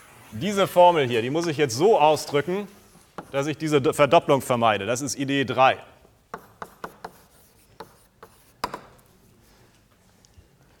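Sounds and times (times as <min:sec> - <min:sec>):
speech: 0:00.3 - 0:05.9
scratchy writing strokes as a formula is written out: 0:02.7 - 0:03.4, 0:06.3 - 0:09.6.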